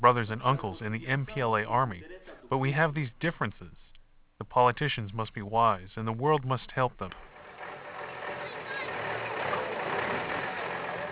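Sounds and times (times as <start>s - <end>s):
speech: 0.0s - 3.8s, 4.4s - 7.3s
truck laden with dried corn idling while backing into a distribution point in Angola: 7.3s - 11.1s.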